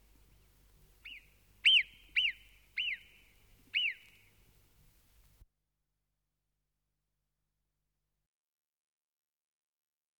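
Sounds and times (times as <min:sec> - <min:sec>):
bird calls with clear whistled notes: 0:01.0 - 0:04.4.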